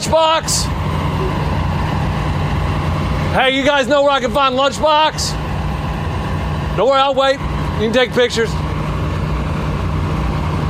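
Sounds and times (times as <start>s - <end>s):
speech: 0.0s - 1.3s, 3.3s - 5.4s, 6.8s - 8.6s
large tour bus engine idling: 0.0s - 10.6s.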